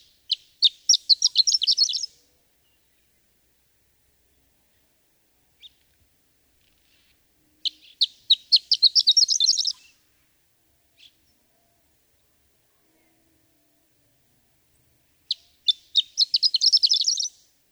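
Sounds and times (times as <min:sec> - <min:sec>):
horned lark song of tinkling notes and twittering run: 0:00.0 - 0:02.2, 0:07.6 - 0:10.0, 0:15.3 - 0:17.5.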